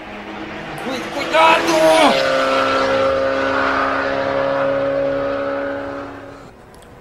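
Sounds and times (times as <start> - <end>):
car speeding away at high speed: 0.0 - 6.9
speech: 1.2 - 2.0.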